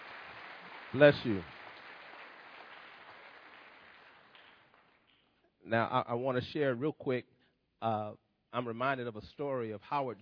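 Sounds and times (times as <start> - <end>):
congregation applauding: 0.0 - 5.1
speech: 0.9 - 1.6, 5.7 - 10.2.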